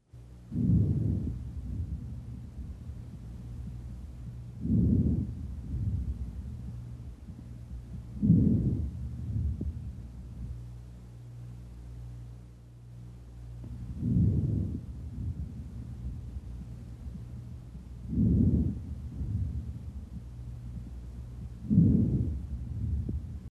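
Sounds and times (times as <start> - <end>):
normal vesicular breath sounds in right and left lower lung lobes: 0.5 - 2.1, 4.6 - 6.2, 7.3 - 9.9, 13.7 - 16.2, 18.0 - 20.2, 20.8 - 23.2.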